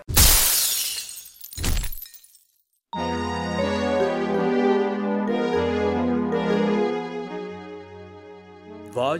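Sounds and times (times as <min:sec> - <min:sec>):
glass door shattering as a man is punched through it: 0:00.1 - 0:02.6
music: 0:02.9 - 0:09.1.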